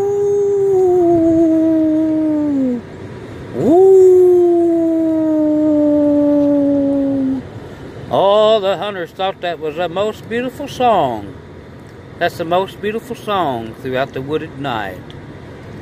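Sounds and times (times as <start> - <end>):
man imitating a coon-hunting hound's deep baying howl: 0.0 - 2.9, 3.5 - 7.5
speech: 9.0 - 11.4, 12.2 - 15.2.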